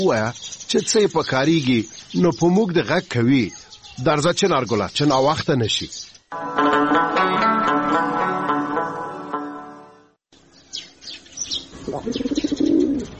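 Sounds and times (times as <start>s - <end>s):
speech: 0.0s - 7.1s
sustained harmonic music: 6.3s - 11.9s
pigeon cooing perched on a wall: 11.8s - 13.1s.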